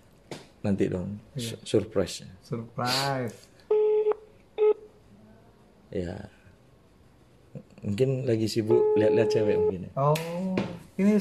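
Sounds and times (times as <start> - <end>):
speech: 0.6 - 3.5, 5.9 - 6.4, 7.8 - 11.1
electronic telephone dialing tones: 3.7 - 4.8, 8.7 - 9.8.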